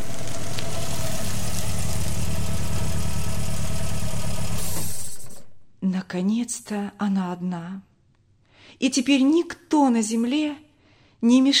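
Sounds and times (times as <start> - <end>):
car engine idling on a dark country dirt road: 0.0 - 5.5
speech: 6.1 - 7.9, 8.8 - 10.6, 11.2 - 11.5.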